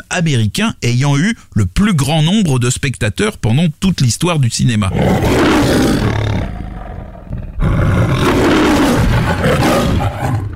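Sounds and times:
speech: 0.1s - 6.4s
lion roaring in a film studio logo: 4.9s - 10.5s.

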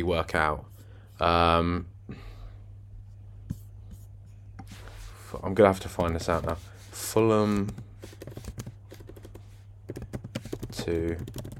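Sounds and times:
speech: 0.0s - 2.3s, 5.3s - 8.4s, 10.8s - 11.5s
typing on a computer keyboard: 7.5s - 11.5s.

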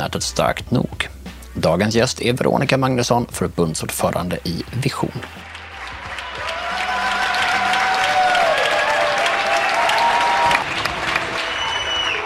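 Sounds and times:
speech: 0.0s - 5.5s
people clapping on balconies in Spain during a coronavirus lockdown: 5.3s - 12.2s.

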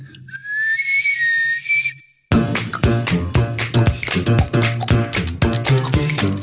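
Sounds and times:
shrill steam whistle blast: 0.2s - 2.2s
loud rhythmic music: 2.3s - 6.4s.

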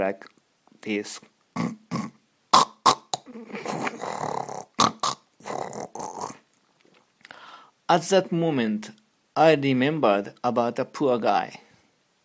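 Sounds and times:
speech: 0.0s - 1.8s, 7.9s - 11.6s
loud snoring and snorting played from a phone recording: 1.6s - 6.4s.

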